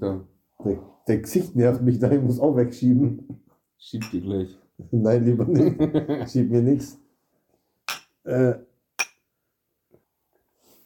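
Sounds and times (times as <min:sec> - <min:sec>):
speech: 0:00.0 - 0:07.0, 0:08.2 - 0:08.7
glasses clinking in a toast: 0:04.0 - 0:04.3, 0:07.9 - 0:08.2
laughter: 0:05.2 - 0:06.7.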